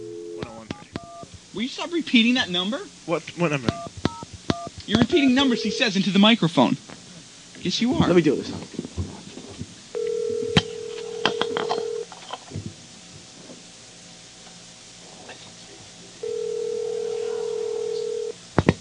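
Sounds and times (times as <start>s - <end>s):
speech: 1.6s - 3.9s, 4.9s - 6.9s, 7.6s - 8.7s
telephone line ringing with electronic tone: 4.6s - 6.0s, 10.0s - 12.1s, 16.2s - 18.4s.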